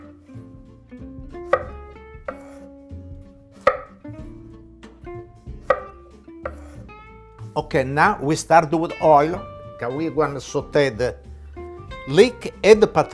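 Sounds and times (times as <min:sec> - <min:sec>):
knife cutting food into small cubes on a board: 0:01.4 - 0:02.7, 0:03.6 - 0:04.4, 0:05.6 - 0:06.9
speech: 0:07.6 - 0:11.2, 0:12.0 - 0:13.1.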